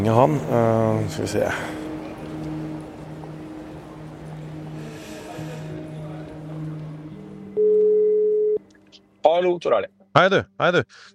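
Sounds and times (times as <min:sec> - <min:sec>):
speech: 0:00.0 - 0:01.8, 0:09.3 - 0:11.1
phone call ringing tone at a train station: 0:07.6 - 0:08.6.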